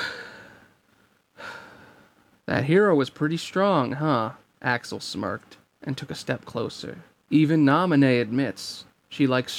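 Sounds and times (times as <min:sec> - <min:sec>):
heavy airy breathing: 0:00.0 - 0:00.8, 0:01.4 - 0:02.4
speech: 0:02.5 - 0:09.5.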